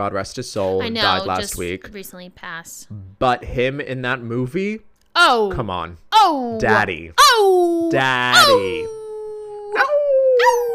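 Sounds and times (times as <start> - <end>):
speech: 0.0 - 9.0
person imitating a dog howl: 7.2 - 10.7.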